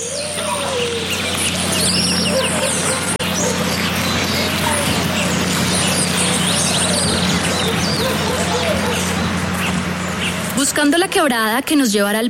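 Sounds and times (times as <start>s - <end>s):
overlapping birdsong in jungle: 0.0s - 12.2s
steady low hum: 0.0s - 12.2s
speech: 10.8s - 12.2s.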